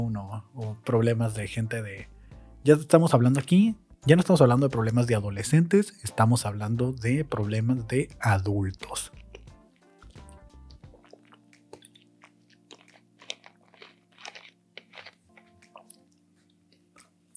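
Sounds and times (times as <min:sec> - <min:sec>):
speech: 0:00.0 - 0:09.2
person drinking water with sips gulps and swallows: 0:09.1 - 0:17.3.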